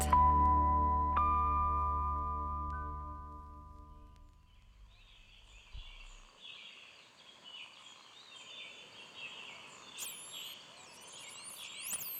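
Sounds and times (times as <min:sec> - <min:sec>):
sustained droning tone: 0:00.0 - 0:04.4.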